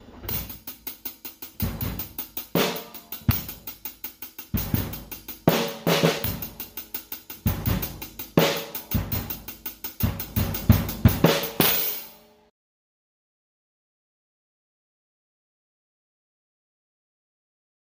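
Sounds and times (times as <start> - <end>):
drum bump: 0.0 - 0.8, 1.5 - 3.8, 4.5 - 12.1.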